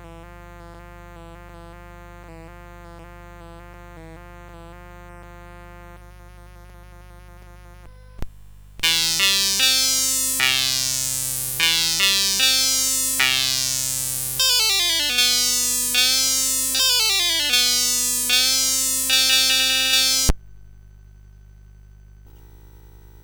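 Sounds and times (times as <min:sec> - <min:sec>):
sitar demonstration on SID chip CSG8580R5: 0:08.8 - 0:20.4.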